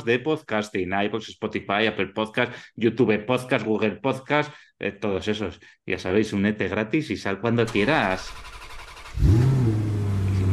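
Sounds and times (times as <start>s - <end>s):
speech: 0.0s - 8.6s, 9.2s - 9.5s
car engine revving: 7.7s - 10.5s.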